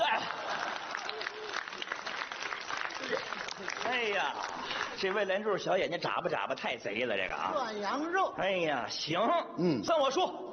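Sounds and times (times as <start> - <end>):
audience applauding: 0.0 - 5.4
speech: 3.9 - 10.5.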